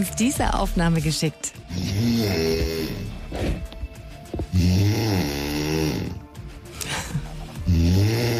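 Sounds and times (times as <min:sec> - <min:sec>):
speech: 0:00.0 - 0:03.6
woman snoring loudly in her sleep: 0:01.6 - 0:03.6, 0:04.5 - 0:08.3.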